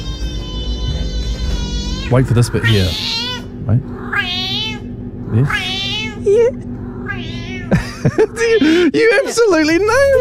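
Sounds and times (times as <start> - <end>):
cat meowing with a drawn-out wavering call: 0.0 - 7.7
speech: 2.1 - 4.0, 5.3 - 6.7, 7.7 - 10.1
laughter: 7.7 - 9.5.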